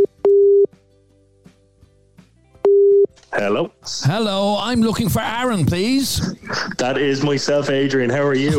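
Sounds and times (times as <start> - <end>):
telephone ringback tone on an outgoing call: 0.0 - 0.7, 2.7 - 3.1
speech: 3.4 - 8.5.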